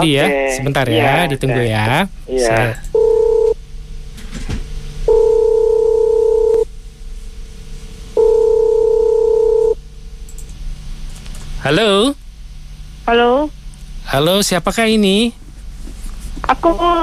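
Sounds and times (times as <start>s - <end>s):
speech: 0.0s - 2.9s, 11.6s - 12.2s, 13.1s - 13.3s, 14.1s - 15.4s, 16.5s - 17.0s
faint continuous hum: 0.0s - 17.0s
mid-pitched electronic telephone call tones: 3.0s - 3.6s, 5.1s - 6.7s, 8.2s - 9.8s.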